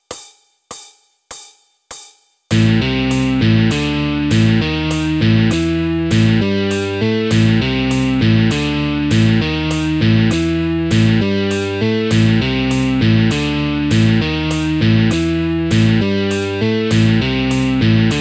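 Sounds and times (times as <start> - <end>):
musical motif: 2.5 - 18.2.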